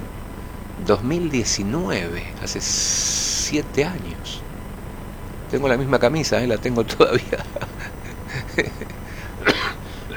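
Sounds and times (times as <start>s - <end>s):
faint steady hiss: 0.0s - 10.1s
speech: 0.8s - 4.5s, 5.5s - 7.9s, 8.6s - 9.0s
laughter: 5.5s - 10.1s
people on a television program coughing: 6.7s - 10.1s.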